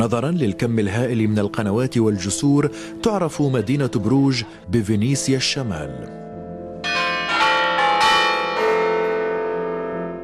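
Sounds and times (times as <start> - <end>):
speech: 0.0 - 6.2
several large tower bells ringing: 6.4 - 10.2.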